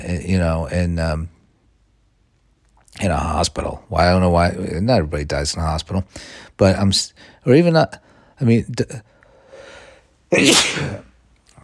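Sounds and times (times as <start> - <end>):
speech: 0.1 - 1.4, 3.0 - 9.1, 10.3 - 11.1
soft breathy inhale: 6.1 - 6.5, 9.2 - 10.1
person sneezing: 10.3 - 11.1.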